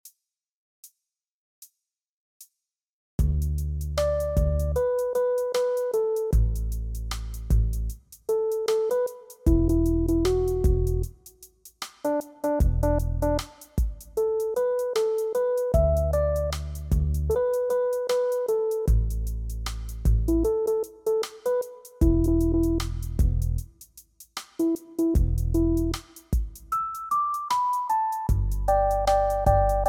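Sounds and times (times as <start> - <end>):
bass: 3.2 - 8.5, 9.5 - 11.2, 12.6 - 14.4, 15.4 - 20.8, 22.0 - 23.7, 25.1 - 26.2, 28.3 - 29.8
drums: 3.2 - 29.8.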